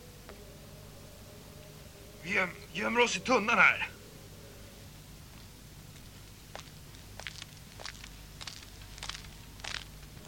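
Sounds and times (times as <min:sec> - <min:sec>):
low hum: 0:00.0 - 0:10.2
speech: 0:02.2 - 0:04.0
footsteps of a patrol walking past: 0:05.2 - 0:10.2.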